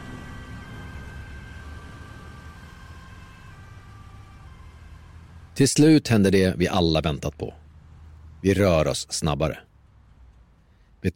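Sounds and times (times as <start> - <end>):
ambulance siren holding a steady tone: 0.0 - 6.0
continuous rumble of slow-moving traffic: 0.0 - 11.1
speech: 5.6 - 7.6, 8.4 - 9.7.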